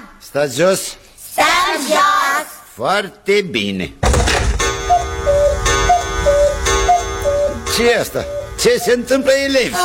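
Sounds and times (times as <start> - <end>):
speech: 0.3 - 4.0, 7.8 - 9.8
clock ticking: 4.5 - 9.8
faint tonal chirps: 4.7 - 9.8.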